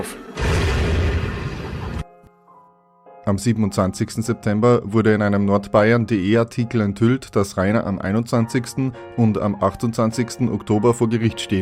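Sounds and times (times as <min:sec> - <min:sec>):
ball bomb firework exploding on a yard: 0:00.4 - 0:02.1
speech: 0:03.3 - 0:11.6.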